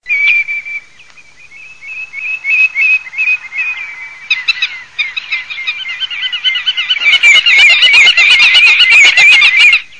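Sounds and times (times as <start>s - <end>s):
black-tailed godwit calling: 0.0s - 9.9s.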